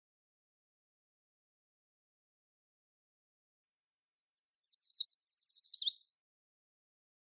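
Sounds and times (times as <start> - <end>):
Eurasian treecreeper Certhia familiaris singing: 3.7 - 6.0.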